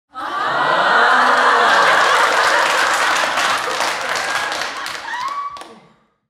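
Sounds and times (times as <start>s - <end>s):
big sitcom audience crowd laughing: 0.1s - 5.2s
sitcom audience applauding: 0.4s - 5.9s.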